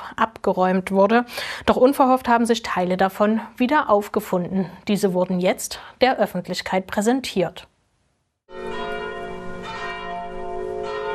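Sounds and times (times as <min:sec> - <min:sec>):
speech: 0:00.2 - 0:07.7
church bells ringing: 0:08.5 - 0:11.1.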